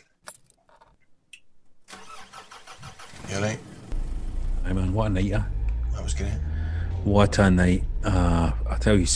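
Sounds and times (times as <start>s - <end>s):
car engine cranking and settling into idle: 1.9s - 9.1s
speech: 5.0s - 9.1s.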